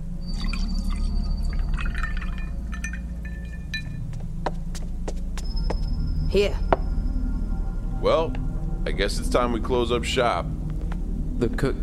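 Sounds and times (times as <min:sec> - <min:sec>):
steady low hum: 0:00.0 - 0:11.8
water pouring into a glass: 0:00.2 - 0:04.0
glass clinks: 0:00.3 - 0:04.0
speech: 0:06.3 - 0:06.6, 0:08.0 - 0:10.6, 0:11.4 - 0:11.8.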